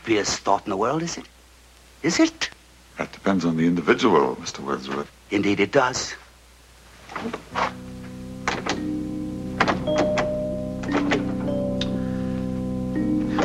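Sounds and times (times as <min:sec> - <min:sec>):
speech: 0:00.1 - 0:01.4, 0:02.0 - 0:06.2, 0:07.1 - 0:07.8
steady low hum: 0:07.7 - 0:13.4
door being locked: 0:08.5 - 0:08.9, 0:09.6 - 0:11.9.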